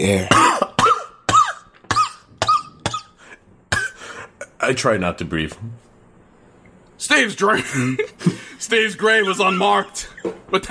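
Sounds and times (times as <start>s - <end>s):
speech: 0.0s - 0.4s, 4.7s - 5.9s, 7.0s - 10.6s
harsh hacking coughs: 0.2s - 4.6s.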